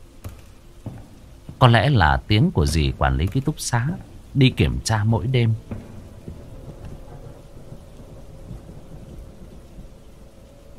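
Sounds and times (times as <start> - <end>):
steady rain at night: 0.0 - 10.7
speech: 1.6 - 5.8.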